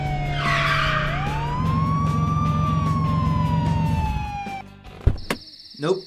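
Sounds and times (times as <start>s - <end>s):
police car siren wailing: 0.0s - 4.7s
speech: 5.8s - 6.0s.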